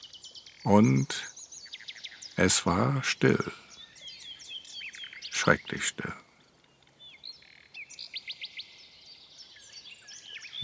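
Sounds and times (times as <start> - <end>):
nightingale singing: 0.0 - 10.6
speech: 0.6 - 1.3, 2.4 - 3.6, 5.5 - 6.2.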